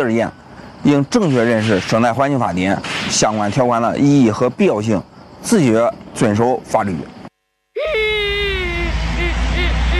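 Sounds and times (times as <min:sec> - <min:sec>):
speech: 0:00.0 - 0:07.2
voice crying like a lost child, voicing a cartoon waste battery: 0:07.8 - 0:09.9.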